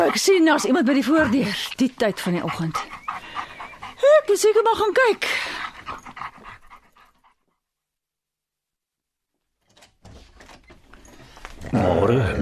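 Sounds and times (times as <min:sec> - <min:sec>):
mongrel dog panting excitedly: 0:00.0 - 0:07.6
speech: 0:00.1 - 0:03.0, 0:04.0 - 0:05.6.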